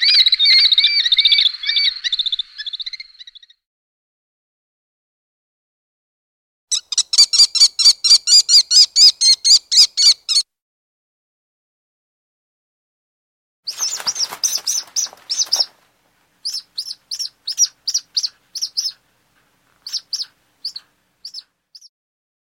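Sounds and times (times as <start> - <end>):
falcon sharp piercing calls: 0.0 - 3.5, 6.7 - 10.4, 16.4 - 19.0, 19.8 - 21.9.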